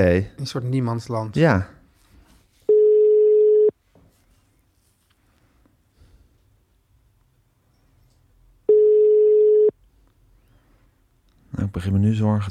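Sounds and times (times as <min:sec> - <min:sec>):
speech: 0:00.0 - 0:01.8, 0:11.6 - 0:12.4
landline telephone ringback tone of unanswered call: 0:02.7 - 0:03.7, 0:08.7 - 0:09.7.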